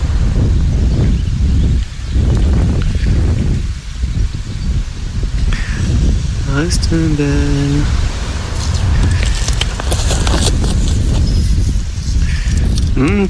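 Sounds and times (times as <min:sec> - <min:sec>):
leaves rustling in the wind: 0:00.0 - 0:13.2
outdoor wind rushing past the microphone: 0:00.0 - 0:13.2
speech: 0:06.6 - 0:08.1, 0:13.0 - 0:13.2.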